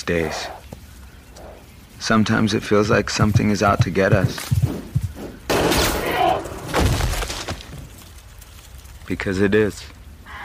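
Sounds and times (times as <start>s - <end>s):
speech: 0.0s - 0.6s, 2.0s - 4.7s, 9.1s - 10.0s
gunshots: 5.5s - 7.5s.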